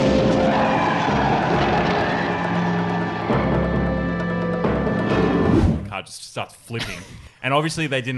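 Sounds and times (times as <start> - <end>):
car tires screeching in a hard skid: 0.0 - 4.1
tire blowing out: 0.0 - 5.5
speech: 6.0 - 8.1.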